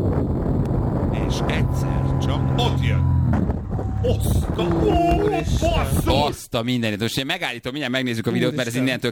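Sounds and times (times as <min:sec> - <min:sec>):
strong wind buffeting the microphone: 0:00.0 - 0:06.4
speech: 0:01.3 - 0:09.0.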